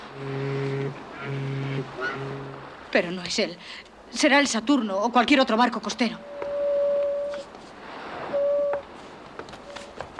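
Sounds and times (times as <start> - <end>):
steamship's foghorn blasts: 0.0 - 2.8, 6.2 - 7.4, 8.3 - 8.8
speech: 0.2 - 0.4, 3.0 - 6.3.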